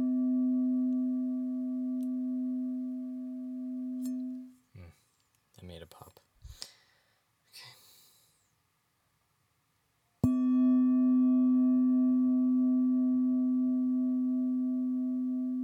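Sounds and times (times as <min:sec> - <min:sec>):
singing bowl ringing with a pure low tone: 0:00.0 - 0:04.6, 0:10.2 - 0:15.6.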